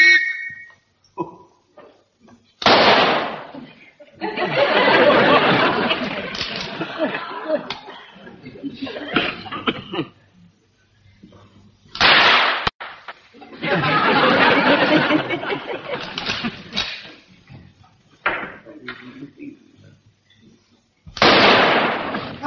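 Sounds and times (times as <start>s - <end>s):
shrill whistle blown by a sergeant: 0.0s - 0.9s
rifle shots fired at targets: 2.6s - 3.5s, 12.0s - 13.1s, 21.2s - 22.3s
laughter: 3.5s - 10.2s, 13.3s - 17.4s.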